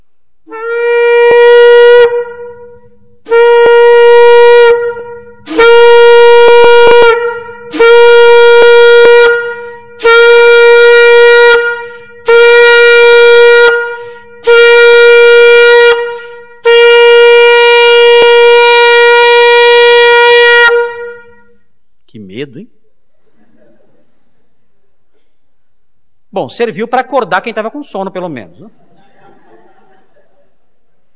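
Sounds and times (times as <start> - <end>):
trumpet blasts: 0.5 - 21.7
laughter: 23.2 - 24.5, 28.7 - 31.1
speech: 26.5 - 28.8.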